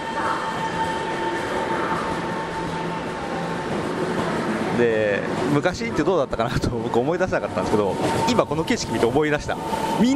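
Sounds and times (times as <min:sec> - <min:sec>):
moving train carriage running on rails in Taiwan: 0:00.0 - 0:10.1
speech: 0:04.8 - 0:10.1.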